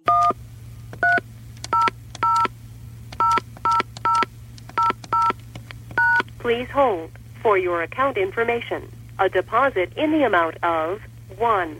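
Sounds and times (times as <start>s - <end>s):
telephone keypad dual-tone dialing beeps: 0.0s - 0.4s, 1.0s - 2.5s, 3.1s - 6.3s
steady low electrical hum: 0.0s - 11.7s
speech: 6.4s - 11.7s.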